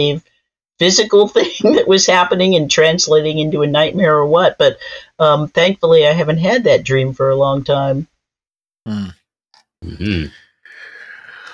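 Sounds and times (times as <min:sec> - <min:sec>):
speech: 0:00.0 - 0:08.1, 0:08.8 - 0:09.2, 0:09.8 - 0:10.4
person yawning: 0:09.8 - 0:11.5.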